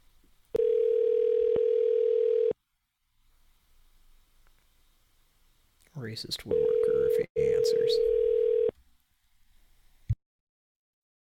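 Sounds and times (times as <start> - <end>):
telephone line tone while calling a number: 0.6 - 2.6, 6.5 - 8.7
speech: 6.1 - 8.3.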